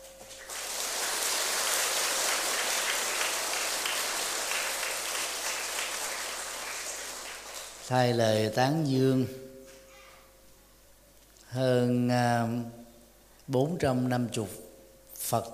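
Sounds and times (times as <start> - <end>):
applause from a large gathering at a Buddhist ceremony welcoming new followers: 0.0 - 7.9
speech: 7.9 - 9.4, 11.5 - 12.8, 13.5 - 14.6, 15.2 - 15.5.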